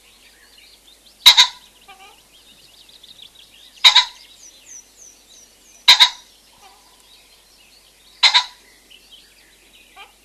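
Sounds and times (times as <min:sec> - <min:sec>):
other birds chirping and whistling: 0:00.2 - 0:10.1
common pheasant rasping two-syllable crow: 0:01.2 - 0:02.3, 0:03.8 - 0:04.5, 0:05.8 - 0:07.1, 0:08.1 - 0:08.9, 0:09.8 - 0:10.2.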